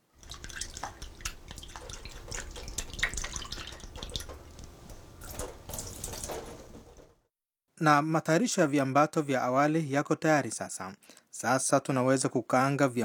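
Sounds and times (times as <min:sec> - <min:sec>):
running water trickling over raisins being washed: 0:00.0 - 0:07.2
speech: 0:07.8 - 0:13.0.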